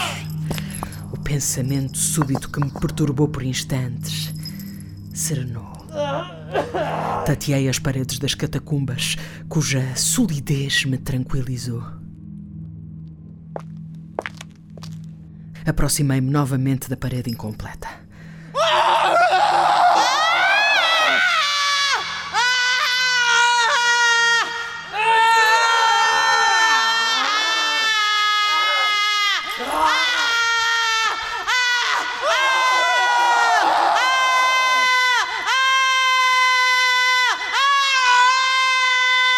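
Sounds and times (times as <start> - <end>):
speech: 1.3 - 4.4, 5.2 - 12.0, 15.7 - 18.0
man screaming loudly in long strained wails: 18.6 - 39.3.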